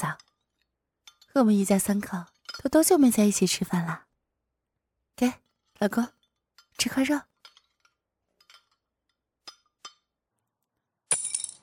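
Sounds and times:
chopsticks dropping and clattering onto a hard floor: 0:00.1 - 0:02.9, 0:05.4 - 0:10.1
speech: 0:01.4 - 0:04.1, 0:05.2 - 0:06.2, 0:06.8 - 0:07.3.

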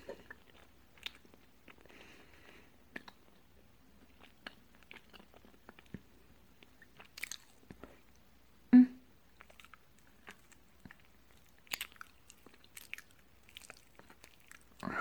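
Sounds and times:
soft chewing and biting of food: 0:00.3 - 0:02.0, 0:02.9 - 0:08.1, 0:09.3 - 0:14.9.

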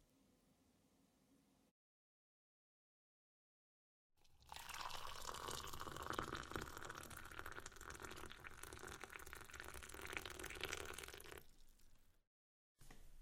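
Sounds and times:
water pouring into a glass: 0:04.2 - 0:12.0.

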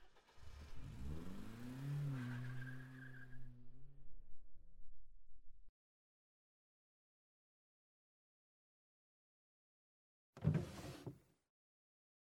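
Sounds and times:
car engine starting and driving off: 0:00.0 - 0:03.9.

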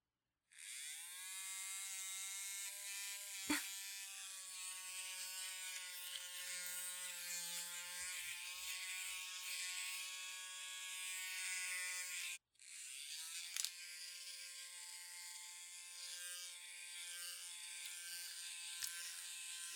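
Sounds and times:
electric shaver buzzing to shave body hair: 0:00.5 - 0:19.7.

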